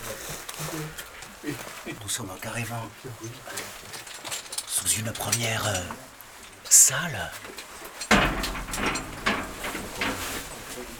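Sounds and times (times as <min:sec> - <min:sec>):
speech: 0:00.8 - 0:03.9, 0:04.8 - 0:06.1, 0:06.7 - 0:09.1
low continuous rumble: 0:04.4 - 0:10.9
heavy door closing at the entrance to an underground mineral site: 0:08.1 - 0:10.9.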